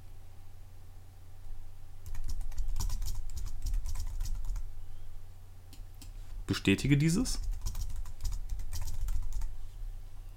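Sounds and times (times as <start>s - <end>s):
low steady hum: 0.0s - 10.3s
typing a password on a computer keyboard: 2.0s - 4.7s, 7.3s - 9.5s
speech: 6.5s - 7.5s.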